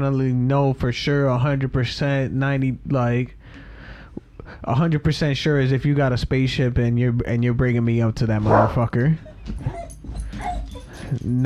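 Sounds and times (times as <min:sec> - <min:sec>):
speech: 0:00.0 - 0:03.6, 0:04.5 - 0:10.2, 0:11.0 - 0:11.4
faint noise: 0:00.0 - 0:11.4
dog whimpering and yipping: 0:08.4 - 0:11.2.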